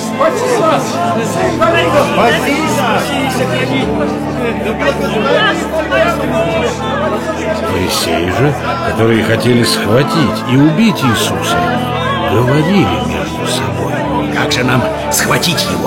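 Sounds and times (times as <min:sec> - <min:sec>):
large crowd of townspeople shouting and calling out in Jerusalem: 0:00.0 - 0:15.8
speech: 0:00.2 - 0:15.8.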